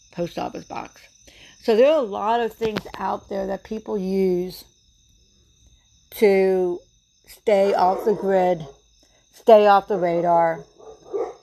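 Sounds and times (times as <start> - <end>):
speech: 0.2 - 4.7, 6.1 - 8.8, 9.4 - 10.7
dog bark: 10.0 - 11.4.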